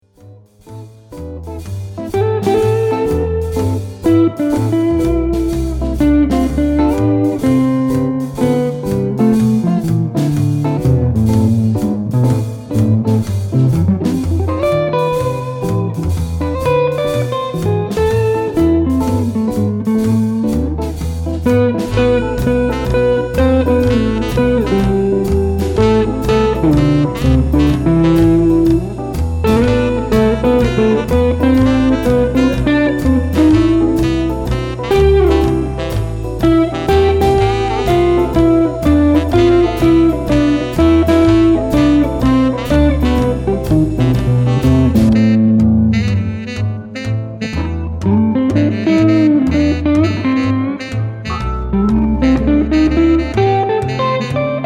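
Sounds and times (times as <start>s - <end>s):
jazz guitar solo in A minor: 0.0s - 54.6s.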